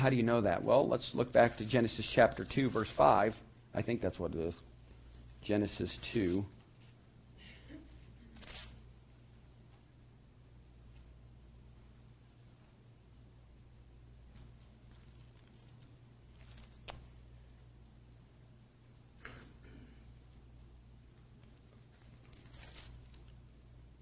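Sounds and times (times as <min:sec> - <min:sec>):
speech: 0:00.0 - 0:04.7, 0:05.4 - 0:06.6
steady low hum: 0:00.0 - 0:24.0
Bible pages being turned: 0:01.3 - 0:03.3, 0:08.3 - 0:08.8, 0:14.2 - 0:17.1, 0:21.7 - 0:23.4.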